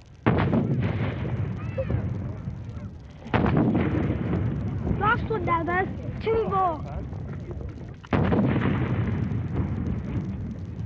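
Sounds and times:
cannon blasts of a royal salute in London: 0:00.2 - 0:02.6, 0:03.2 - 0:05.6, 0:08.1 - 0:10.8
faint voices murmuring: 0:01.5 - 0:08.1.

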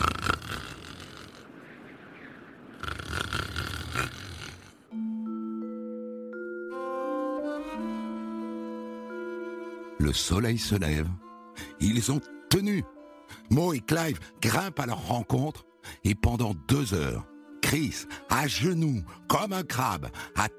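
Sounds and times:
person snoring with raspy rattling breaths: 0:00.0 - 0:01.5, 0:02.8 - 0:04.9
soft sustained musical tones: 0:04.9 - 0:20.5
speech: 0:10.0 - 0:11.2, 0:11.8 - 0:20.5.

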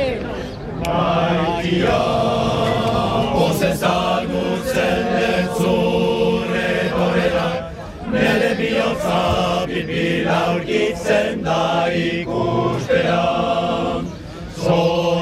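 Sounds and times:
men's choir singing a welcome song in the streets of Bayonne: 0:00.8 - 0:15.2
speech: 0:01.7 - 0:02.2.

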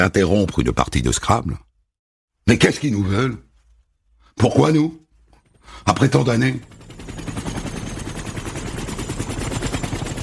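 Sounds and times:
speech: 0:00.0 - 0:01.7, 0:02.5 - 0:03.5, 0:04.4 - 0:05.0, 0:05.7 - 0:06.8
landing helicopter rotor chopping: 0:05.3 - 0:10.2.

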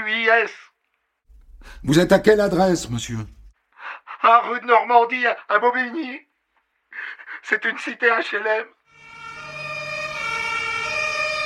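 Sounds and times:
speech: 0:00.1 - 0:00.7, 0:01.6 - 0:03.4, 0:04.2 - 0:06.3, 0:07.0 - 0:08.8
emergency vehicle siren responding to a call at a housing estate in Bobigny: 0:08.9 - 0:11.4.

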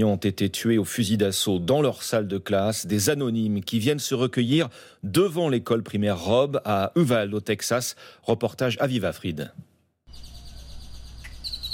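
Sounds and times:
speech: 0:00.0 - 0:09.7
birds chirping near a primary school: 0:10.1 - 0:11.7.

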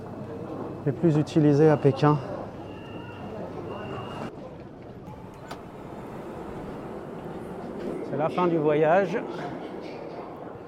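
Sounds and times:
speech: 0:00.8 - 0:02.3, 0:08.2 - 0:09.6
metro train rolling into a station: 0:04.6 - 0:10.6
faint high whine from metro train wheels: 0:05.1 - 0:08.6.

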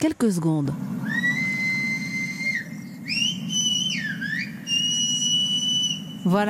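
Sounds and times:
speech: 0:00.0 - 0:00.9, 0:06.2 - 0:06.4
low rumble: 0:00.0 - 0:06.4
human whistle in the whistled language of the Canary Islands: 0:01.0 - 0:06.2.

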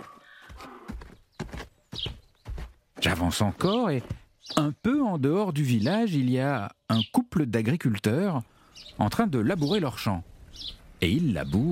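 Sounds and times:
donkey hooves clip-clopping on a hard surface: 0:00.0 - 0:04.6
speech: 0:03.0 - 0:11.7.

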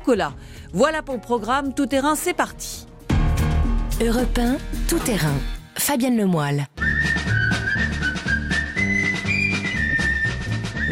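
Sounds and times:
speech: 0:00.1 - 0:02.9, 0:04.0 - 0:06.8
whistled jaunty film theme melody: 0:06.8 - 0:10.9.

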